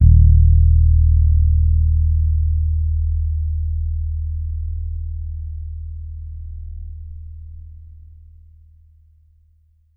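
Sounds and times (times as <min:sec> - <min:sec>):
Thunderbird bass guitar D sharp note played with finger: 0:00.0 - 0:08.8.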